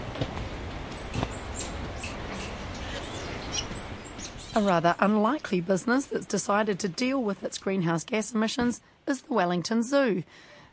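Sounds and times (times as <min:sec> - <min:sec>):
steady noisy outdoor background: 0:00.0 - 0:10.7
squirrel monkeys chirping: 0:01.3 - 0:04.8
speech: 0:04.6 - 0:10.7.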